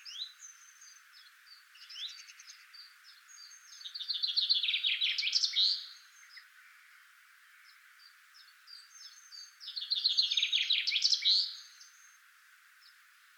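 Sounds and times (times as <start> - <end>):
common chaffinch Fringilla coelebs singing: 0.0 - 13.3.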